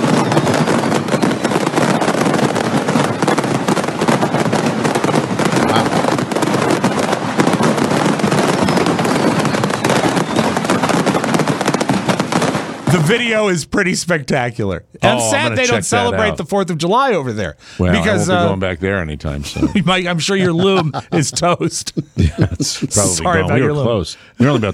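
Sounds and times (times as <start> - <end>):
fireworks exploding in a burning factory: 0.0 - 13.6, 15.0 - 16.6, 17.9 - 18.6, 19.6 - 21.6, 22.9 - 23.8
speech: 5.8 - 6.0, 13.1 - 24.7
laughter: 15.1 - 16.4, 17.8 - 18.6, 19.2 - 24.7.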